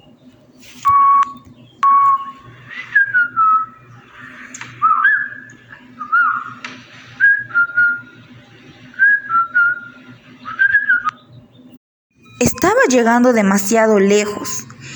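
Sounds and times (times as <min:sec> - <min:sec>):
low steady hum: 0:00.0 - 0:14.9
person whistling a wandering melodic tune: 0:00.9 - 0:03.8, 0:04.8 - 0:06.4, 0:09.0 - 0:09.8, 0:10.5 - 0:11.1
speech: 0:12.8 - 0:14.7.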